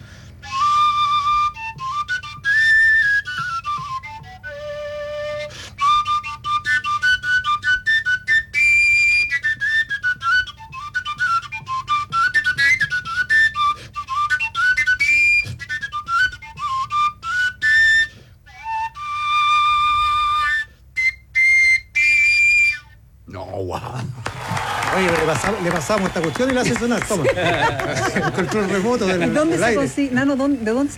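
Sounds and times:
willow flute with no finger holes played by breath: 0:00.4 - 0:23.0
laughter: 0:24.2 - 0:30.9
speech: 0:25.8 - 0:30.9.

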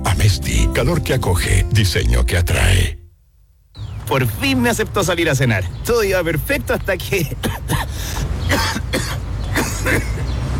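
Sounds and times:
speech: 0:00.3 - 0:03.0, 0:04.1 - 0:09.2, 0:09.8 - 0:10.1
harsh phlegmy coughing fit during a dinner date: 0:07.4 - 0:10.2.

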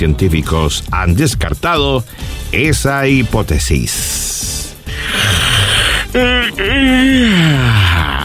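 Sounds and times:
speech: 0:00.0 - 0:05.4, 0:06.1 - 0:08.2
person yawning: 0:04.9 - 0:08.2.

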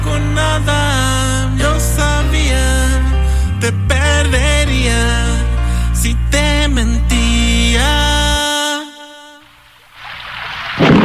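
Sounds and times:
low rumble: 0:00.0 - 0:08.4
sustained musical tone: 0:00.0 - 0:08.4.

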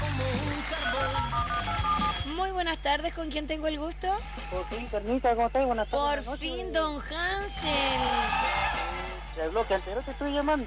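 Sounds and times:
telephone ringing with a melodic electronic tone: 0:00.7 - 0:02.4
speech: 0:02.6 - 0:08.7, 0:09.4 - 0:10.6.

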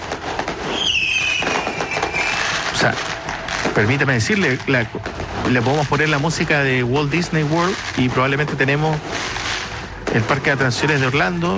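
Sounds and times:
fireworks set off by several people, crackling and popping: 0:00.0 - 0:11.5
high whistling streak of a firework: 0:00.7 - 0:02.8
speech: 0:02.8 - 0:03.1, 0:03.7 - 0:09.2, 0:10.1 - 0:11.5.

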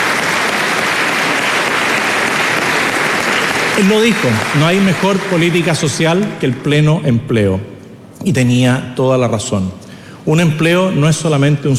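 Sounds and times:
loud sustained applause from a large crowd: 0:00.0 - 0:06.8
speech: 0:03.8 - 0:11.7.

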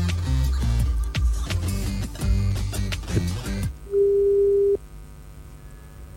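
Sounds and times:
music: 0:00.0 - 0:03.7
telephone line tone while dialing a call: 0:03.9 - 0:04.8.

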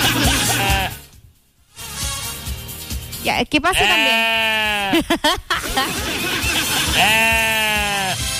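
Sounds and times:
laughter: 0:00.0 - 0:00.9, 0:04.7 - 0:07.6
donkey braying: 0:00.0 - 0:01.1, 0:03.7 - 0:05.0, 0:05.8 - 0:08.2
speech: 0:03.2 - 0:07.6.

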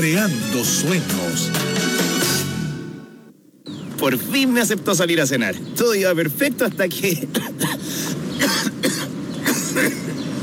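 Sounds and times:
speech: 0:00.0 - 0:01.7, 0:04.0 - 0:08.0
harsh phlegmy coughs: 0:07.2 - 0:10.2.

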